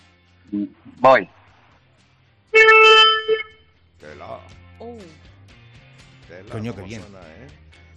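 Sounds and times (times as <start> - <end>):
speech: 0.5 - 1.4, 4.2 - 5.3, 6.3 - 7.7
2019 car horn sounded by the front passenger: 2.6 - 3.6.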